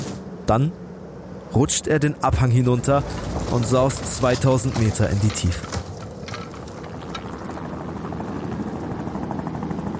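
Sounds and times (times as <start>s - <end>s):
helicopter droning overhead above a snowy mountainside: 0.2s - 9.9s
speech: 0.5s - 0.8s, 1.5s - 5.7s
faint mechanical rattling: 2.4s - 7.5s.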